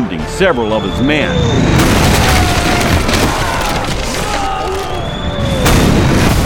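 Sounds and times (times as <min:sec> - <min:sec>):
speech: 0:00.4 - 0:01.8
crackling debris: 0:01.6 - 0:06.4
explosion boom: 0:01.8 - 0:06.4.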